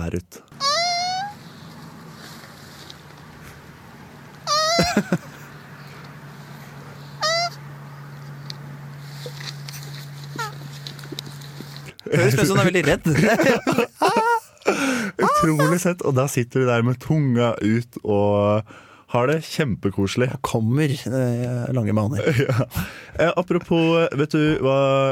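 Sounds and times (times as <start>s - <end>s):
speech: 0.0s - 0.5s, 5.0s - 5.3s, 12.1s - 25.0s
mating tortoises honking calls: 0.5s - 10.8s
steady low hum: 0.5s - 12.4s
laughter: 4.6s - 5.5s, 12.0s - 15.8s, 22.2s - 22.9s.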